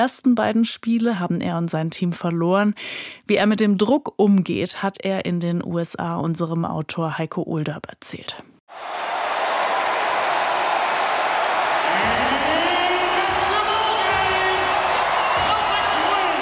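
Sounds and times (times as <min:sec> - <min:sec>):
speech: 0:00.0 - 0:08.9
basketball arena crowd roaring and cheering in a standing ovation: 0:08.7 - 0:16.4
whoops and shouts from arena crowd: 0:08.9 - 0:16.4.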